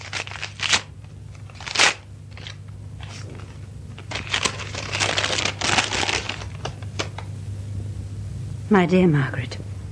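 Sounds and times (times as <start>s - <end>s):
envelope being slit open with a paper knife: 0.0s - 6.8s
paper rustling: 0.0s - 7.2s
speech: 8.7s - 9.6s.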